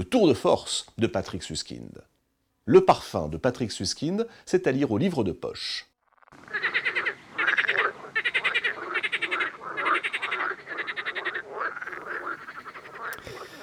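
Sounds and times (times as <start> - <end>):
speech: 0.1 - 5.9
frog croaking: 6.0 - 13.6.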